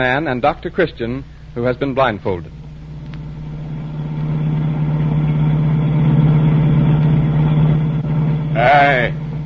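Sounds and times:
speech: 0.0s - 2.6s
car engine humming while driving into a city: 2.4s - 9.4s.

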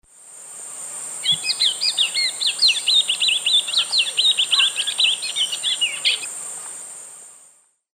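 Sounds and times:
Oryzoborus crassirostris singing in eastern lowlands of South America: 1.2s - 6.3s.

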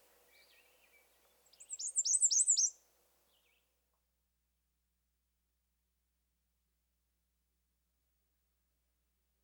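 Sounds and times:
male American Redstart song: 0.0s - 3.7s.

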